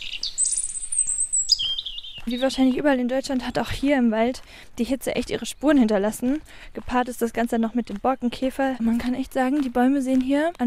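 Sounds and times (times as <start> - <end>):
birds singing in a forest: 0.0 - 3.8, 7.0 - 10.6
speech: 2.3 - 10.6.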